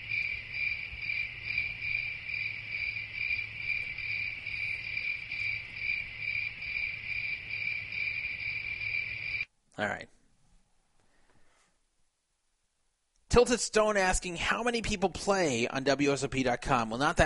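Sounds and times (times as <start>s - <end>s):
crickets chirping: 0.0s - 9.5s
speech: 9.8s - 10.2s, 13.4s - 17.2s.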